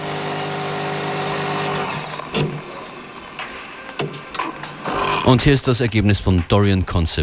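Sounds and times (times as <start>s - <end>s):
coffee machine grinder whirring: 0.0s - 3.2s
speech: 5.3s - 7.2s.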